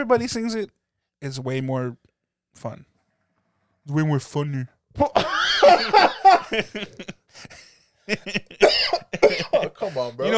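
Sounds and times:
speech: 0.0s - 2.9s, 3.9s - 9.1s, 9.8s - 10.3s
laughter: 5.0s - 10.3s
person coughing hard after smoking: 5.2s - 7.0s, 8.6s - 10.3s.

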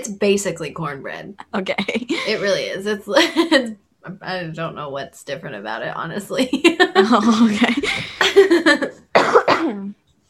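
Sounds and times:
speech: 0.1s - 9.0s, 9.6s - 10.2s
person coughing harshly: 8.8s - 9.9s.

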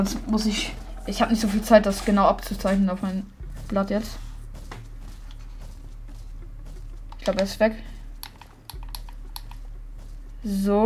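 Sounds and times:
speech: 0.0s - 4.3s, 7.3s - 7.9s, 10.4s - 10.8s
steady low hum: 0.0s - 10.8s
computer keyboard keys clicking: 8.2s - 9.6s.

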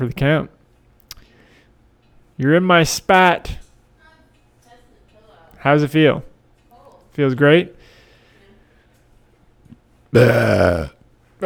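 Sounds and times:
speech: 0.0s - 0.6s, 2.4s - 3.6s, 5.6s - 6.3s, 7.2s - 7.8s, 10.1s - 11.4s
loud drawn-out burp: 10.2s - 11.4s.

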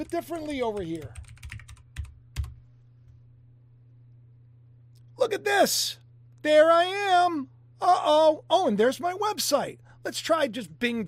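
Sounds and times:
speech: 0.0s - 1.2s, 5.2s - 11.0s
computer keyboard clicks while typing a web address: 0.0s - 2.6s.

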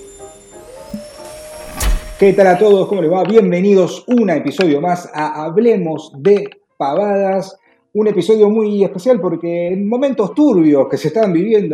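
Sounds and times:
vacuum cleaner switching on: 0.0s - 3.3s
speech: 2.2s - 11.7s.

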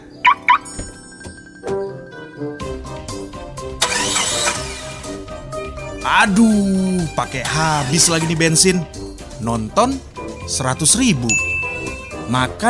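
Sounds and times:
quick bright electronic chirps: 0.0s - 2.0s
car engine cranking, starting and idling: 3.1s - 9.2s
speech: 6.0s - 11.5s, 12.3s - 12.6s.

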